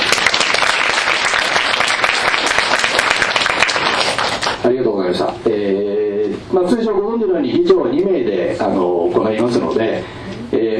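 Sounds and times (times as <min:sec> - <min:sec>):
room full of people applauding: 0:00.0 - 0:04.6
speech: 0:04.7 - 0:05.8, 0:06.5 - 0:10.6.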